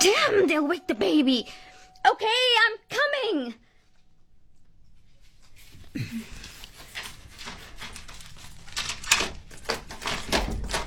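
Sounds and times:
speech: 0.0 - 3.6, 6.0 - 6.4
rustling handling noises: 3.8 - 10.8
front door opening: 6.8 - 10.8.

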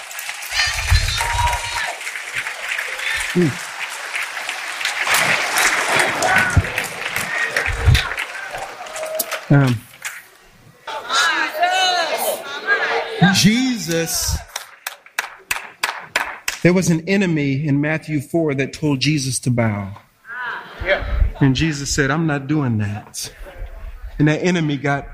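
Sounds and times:
church congregation cheering and whooping: 0.0 - 14.8
church congregation clapping: 0.0 - 16.7
people shouting: 0.6 - 3.7, 5.0 - 9.7, 10.9 - 14.5
speech: 3.4 - 3.7, 9.5 - 9.8, 13.4 - 14.5, 16.6 - 20.1, 20.8 - 23.4, 24.2 - 25.1.

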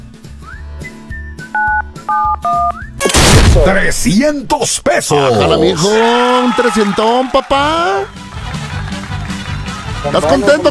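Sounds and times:
phone keypad dual-tone beeps: 1.6 - 2.8
speech: 2.1 - 2.9, 3.6 - 8.2, 10.0 - 10.6.

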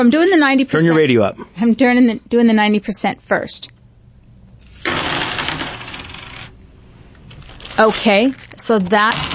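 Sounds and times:
speech: 0.0 - 3.8, 7.8 - 9.3
handful of silver half-dollar coins spilling onto a hard tabletop: 4.6 - 6.6, 7.4 - 9.3.

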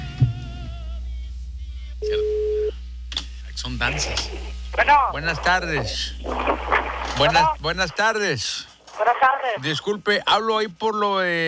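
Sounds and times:
telephone line hum after a voicemail greeting on a call to a home phone: 0.6 - 2.9, 3.6 - 9.6
speech: 2.0 - 2.3, 3.6 - 11.4.

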